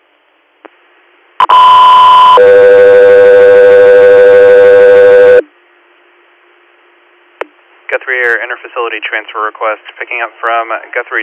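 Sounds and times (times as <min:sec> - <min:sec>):
radio dispatch alert tones: 0:01.4 - 0:05.4
speech: 0:08.9 - 0:11.2.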